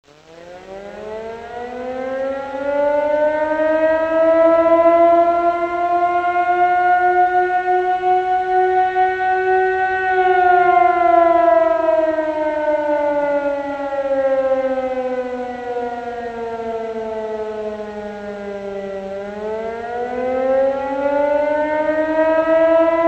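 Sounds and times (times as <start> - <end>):
air raid: 0.1 - 23.0.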